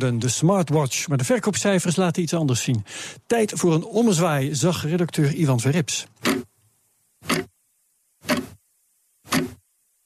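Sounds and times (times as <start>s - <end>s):
speech: 0.0s - 6.5s
mechanical watch ticking: 6.2s - 7.6s, 8.2s - 8.6s, 9.2s - 9.6s.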